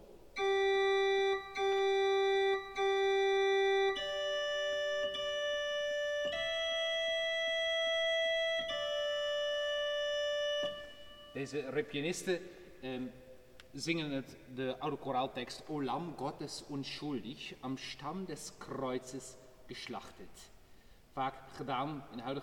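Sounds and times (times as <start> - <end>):
choir organ playing slow melody on a bright tierce stop: 0.3 - 12.5
speech: 11.4 - 20.6, 21.2 - 22.4.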